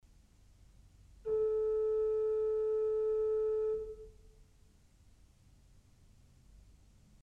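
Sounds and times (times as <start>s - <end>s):
Principal 4' organ pipe sounding A: 1.3s - 4.1s.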